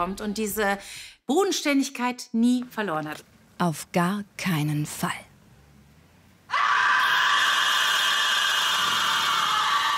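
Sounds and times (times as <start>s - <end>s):
speech: 0.0s - 5.3s
woman screaming after finding a corpse: 6.5s - 9.9s.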